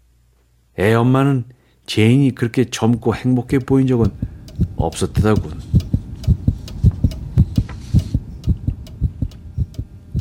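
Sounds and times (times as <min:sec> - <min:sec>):
faint hum: 0:00.0 - 0:10.1
speech: 0:00.8 - 0:05.7
heartbeat thumping in low pulses: 0:03.6 - 0:10.1.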